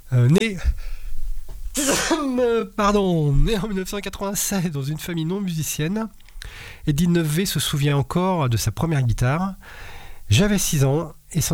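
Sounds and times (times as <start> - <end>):
speech: 0.1 - 0.9, 1.8 - 11.5
sneeze: 1.8 - 2.5.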